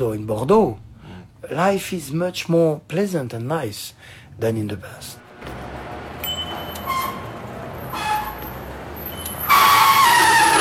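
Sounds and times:
speech: 0:00.0 - 0:05.2
steady street noise: 0:05.1 - 0:10.6
bicycle brakes squealing: 0:06.2 - 0:10.6.

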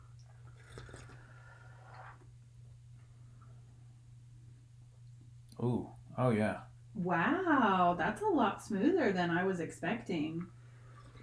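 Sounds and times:
steady low hum: 0:00.0 - 0:11.2
person sipping a drink: 0:00.2 - 0:02.3, 0:10.8 - 0:11.2
speech: 0:05.6 - 0:10.6.

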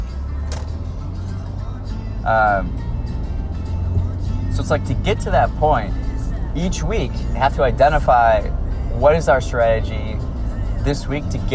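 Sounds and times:
steady low rumble of passing road traffic: 0:00.0 - 0:11.5
brief sharp click: 0:00.4 - 0:00.8
speech: 0:02.3 - 0:02.9, 0:04.6 - 0:06.0, 0:06.6 - 0:11.5.

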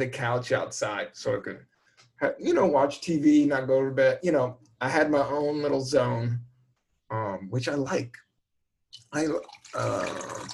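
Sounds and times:
speech: 0:00.0 - 0:06.5, 0:07.1 - 0:08.2, 0:08.9 - 0:10.5
brownish-purple Recess drink poured into a container: 0:09.0 - 0:10.5.

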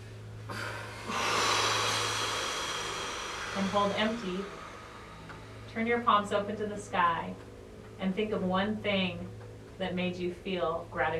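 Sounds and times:
powerful exhale during a guided breathwork session: 0:00.5 - 0:05.8
speech: 0:03.6 - 0:04.6, 0:05.8 - 0:11.1.

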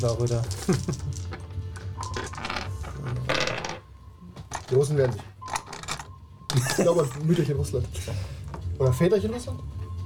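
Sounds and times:
speech: 0:00.0 - 0:01.4, 0:04.7 - 0:05.3, 0:06.6 - 0:09.8
handful of dice clattering across a surface: 0:00.0 - 0:07.4.

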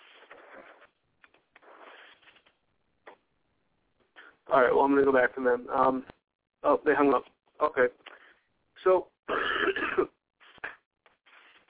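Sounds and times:
speech: 0:04.5 - 0:08.1, 0:08.8 - 0:09.8
sick person coughing: 0:09.3 - 0:10.8
throat clearing: 0:09.3 - 0:10.8.

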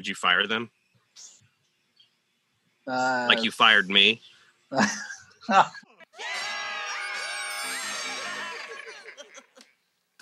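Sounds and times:
speech: 0:00.0 - 0:01.4, 0:02.9 - 0:06.4
laughter: 0:04.8 - 0:09.7
group of people screaming: 0:06.1 - 0:09.4.

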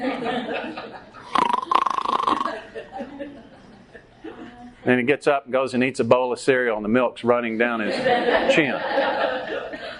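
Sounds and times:
laughter: 0:00.0 - 0:01.3, 0:02.3 - 0:04.8, 0:07.8 - 0:09.9
speech: 0:00.0 - 0:01.5, 0:04.8 - 0:09.2
man's voice imitating a husband snoring: 0:01.3 - 0:02.6.

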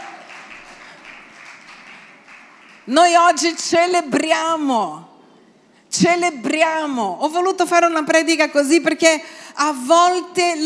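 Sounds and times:
congregation applauding: 0:00.0 - 0:03.2
speech: 0:02.9 - 0:05.1, 0:06.0 - 0:10.6.

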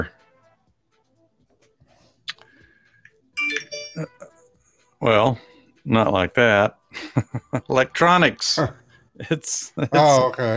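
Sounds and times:
Bluetooth phone connected notification chiming beeps: 0:03.4 - 0:04.4
speech: 0:04.0 - 0:04.2, 0:05.0 - 0:10.5.

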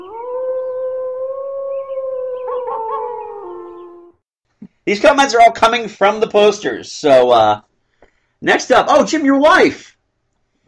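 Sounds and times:
wolves howling: 0:00.0 - 0:04.2
speech: 0:04.8 - 0:07.7, 0:08.4 - 0:09.9.

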